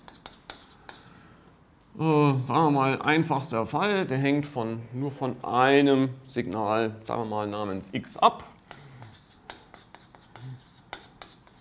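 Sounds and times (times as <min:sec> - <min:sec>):
writing on a board: 0:00.0 - 0:01.1, 0:08.7 - 0:11.5
speech: 0:02.0 - 0:08.5.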